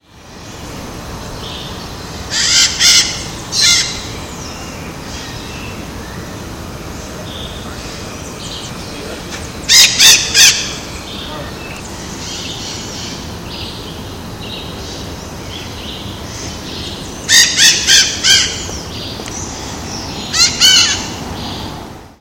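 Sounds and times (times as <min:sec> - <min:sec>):
Diopsittaca nobilis calling: 0:02.3 - 0:05.5, 0:08.6 - 0:13.7, 0:16.3 - 0:21.6.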